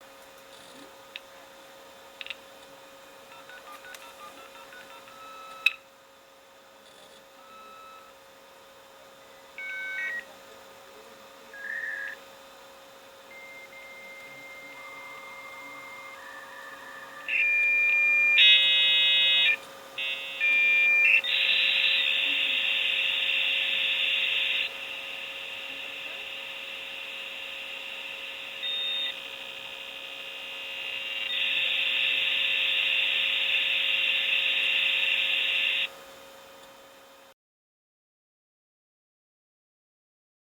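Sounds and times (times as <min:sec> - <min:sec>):
56k dial-up modem sound: 0:03.3 - 0:05.8, 0:09.6 - 0:10.3, 0:13.3 - 0:35.9.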